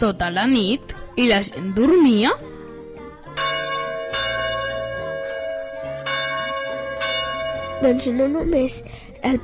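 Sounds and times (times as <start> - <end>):
speech: 0.0 - 2.5, 7.8 - 9.4
church bells pealing: 3.3 - 8.8.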